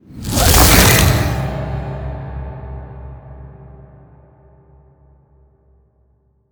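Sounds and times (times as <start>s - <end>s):
metallic horror sound effect: 0.1s - 2.9s.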